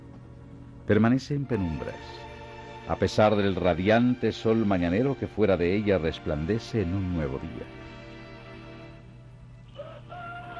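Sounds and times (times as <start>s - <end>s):
steady low hum: 0.0s - 10.5s
speech: 0.9s - 7.9s
distant rooster crowing on a sunny morning: 9.7s - 10.5s.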